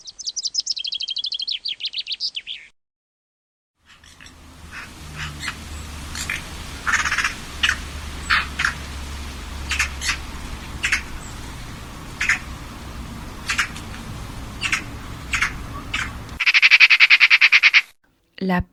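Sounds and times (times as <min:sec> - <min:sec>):
common chaffinch singing: 0:00.0 - 0:02.7, 0:03.9 - 0:17.8
scattered sharp noise bursts: 0:03.9 - 0:17.9.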